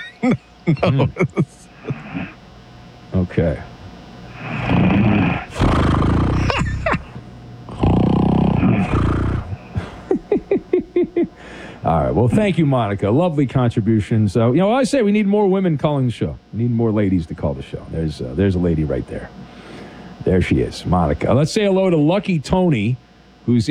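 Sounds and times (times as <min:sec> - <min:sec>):
laughter: 0:00.0 - 0:02.4, 0:04.5 - 0:07.2, 0:08.6 - 0:11.6
speech: 0:00.2 - 0:02.3, 0:03.1 - 0:03.7, 0:11.9 - 0:19.4, 0:20.2 - 0:23.6
person snoring in long rasping breaths: 0:01.8 - 0:02.4, 0:04.3 - 0:10.2.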